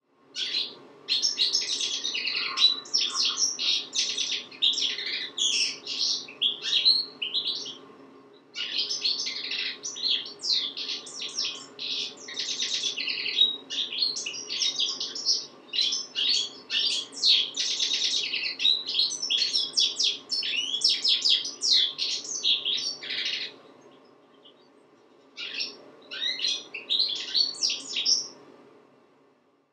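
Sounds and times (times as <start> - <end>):
goldfinch singing: 0.4 - 7.8, 8.6 - 24.7, 25.4 - 28.4.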